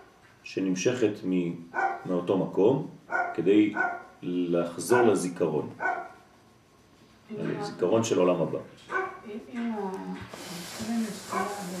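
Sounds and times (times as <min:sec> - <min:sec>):
speech: 0:00.5 - 0:06.0, 0:07.3 - 0:11.7
dog barking in high-pitched yelps: 0:01.8 - 0:02.1, 0:03.1 - 0:04.2, 0:05.8 - 0:06.2, 0:08.9 - 0:09.2, 0:11.3 - 0:11.7.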